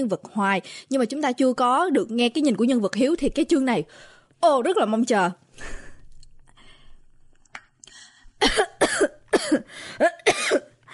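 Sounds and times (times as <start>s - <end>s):
speech: 0.0s - 5.8s
woman sick with tuberculosis coughing harshly: 8.4s - 10.8s.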